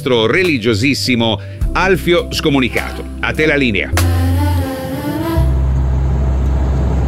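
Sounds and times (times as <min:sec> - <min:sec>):
speech: 0:00.0 - 0:04.2
truck engine droning while driving along the road at 70 km/h: 0:03.1 - 0:07.0.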